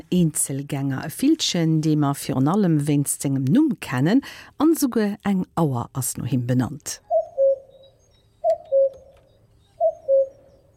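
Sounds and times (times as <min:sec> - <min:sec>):
speech: 0:00.1 - 0:07.0
male common cuckoo territorial call: 0:07.0 - 0:10.7.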